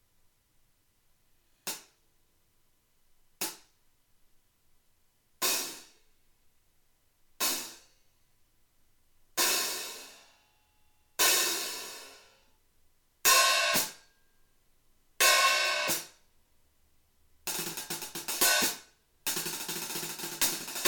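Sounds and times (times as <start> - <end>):
antique hi-hat cymbal set: 5.4 - 6.0, 7.4 - 8.0, 9.4 - 10.4, 11.2 - 12.5, 13.3 - 14.0, 15.2 - 16.2, 17.5 - 20.8.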